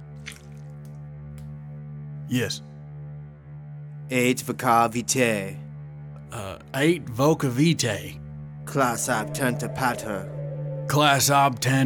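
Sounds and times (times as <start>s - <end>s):
blood dripping: 0.1s - 0.9s
speech: 2.3s - 2.7s, 4.1s - 5.6s, 6.3s - 11.8s.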